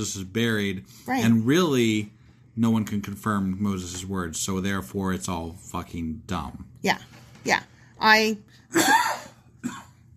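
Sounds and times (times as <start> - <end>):
speech: 0.0 - 9.0
person coughing harshly: 8.7 - 10.1.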